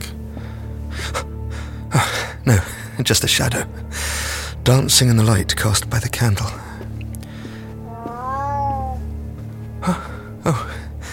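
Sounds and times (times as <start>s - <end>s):
speech: 2.0s - 6.6s, 9.8s - 10.8s
cat meowing: 7.7s - 9.2s.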